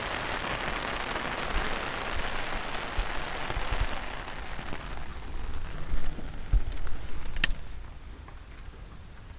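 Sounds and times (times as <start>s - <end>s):
rain on an umbrella: 0.0s - 9.3s.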